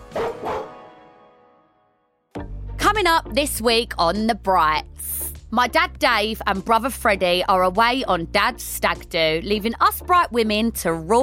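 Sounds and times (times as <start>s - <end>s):
dog barking: 0.1s - 0.8s
speech: 2.9s - 11.2s.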